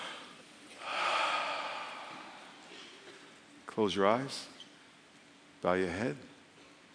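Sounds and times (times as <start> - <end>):
group of people taking a deep breath together in a worship session: 0.0 - 3.4
speech: 3.8 - 4.5, 5.6 - 6.3.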